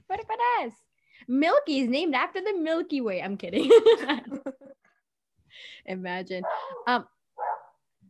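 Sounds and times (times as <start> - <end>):
speech: 0.6 - 4.5, 5.6 - 7.2
dog barking sharply: 6.4 - 7.8.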